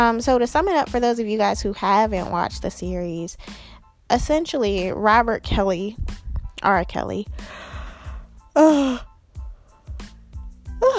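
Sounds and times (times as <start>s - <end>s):
speech: 0.0s - 7.7s, 8.6s - 9.1s
low thumps: 4.2s - 7.9s
person yawning while lying down: 8.6s - 9.1s.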